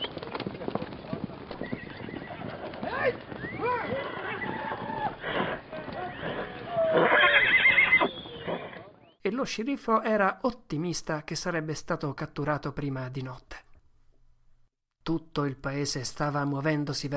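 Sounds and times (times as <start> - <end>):
hooves clip-clopping: 0.0 - 9.0
horse neighing: 1.6 - 9.0
speech: 9.3 - 13.6, 15.1 - 17.1.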